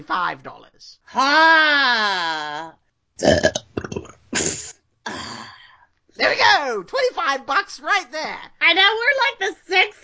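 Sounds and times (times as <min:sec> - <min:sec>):
speech: 0:00.0 - 0:03.7, 0:06.2 - 0:10.0
long loud drawn-out burp: 0:03.2 - 0:05.6.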